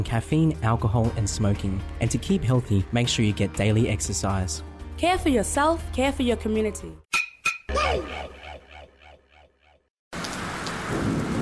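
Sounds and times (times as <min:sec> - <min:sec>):
speech: 0:00.0 - 0:07.1
heavy rain: 0:10.2 - 0:11.3
thunder crack and rolling rumble: 0:10.6 - 0:11.3.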